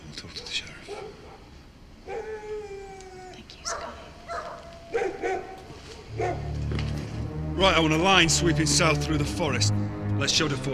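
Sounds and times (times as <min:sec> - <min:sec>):
hunting dogs barking during a manhunt in a forest: 0:00.3 - 0:02.4, 0:03.6 - 0:06.6
speech: 0:07.6 - 0:10.7.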